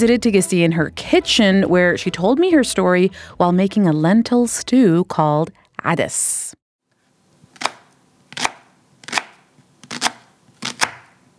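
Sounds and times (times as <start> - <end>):
speech: 0.0 - 6.6
knife chopping onions on a board in a home kitchen: 7.4 - 11.3.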